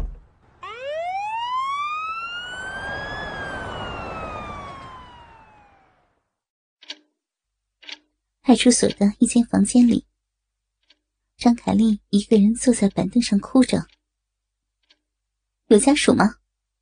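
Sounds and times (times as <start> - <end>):
police siren wailing: 0.6 - 6.3
speech: 8.5 - 10.1, 11.4 - 14.0, 15.7 - 16.4.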